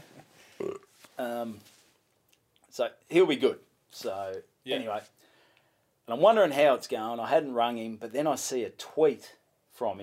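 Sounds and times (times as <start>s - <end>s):
person burping with a guttural belch: 0.6s - 0.9s
speech: 1.2s - 1.8s, 2.8s - 5.2s, 6.1s - 10.0s.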